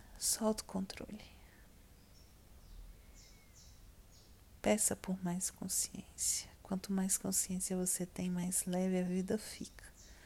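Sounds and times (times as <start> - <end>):
speech: 0.2 - 1.4, 4.6 - 10.0
small bird singing: 1.9 - 6.4, 7.1 - 10.2.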